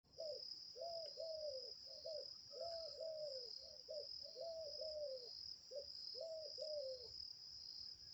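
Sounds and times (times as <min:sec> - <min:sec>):
mourning dove calling: 0:00.1 - 0:07.2.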